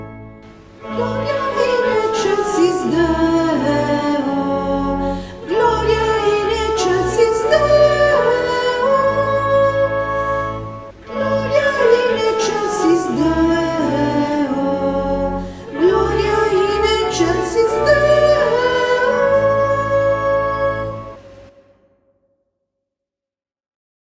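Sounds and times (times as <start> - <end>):
sopranos and tenors singing a Gloria: 0.5 - 21.5.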